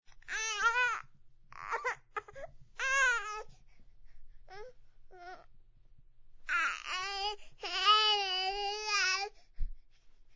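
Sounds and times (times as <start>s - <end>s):
baby crying: 0.3s - 1.0s, 1.6s - 3.5s, 6.5s - 9.3s.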